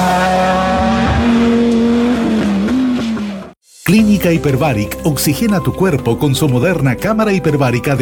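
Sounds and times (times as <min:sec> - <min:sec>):
rally car engine revving loudly: 0:00.0 - 0:03.6
rally car tires skidding and scrabbling: 0:00.0 - 0:03.6
speech: 0:03.9 - 0:07.9.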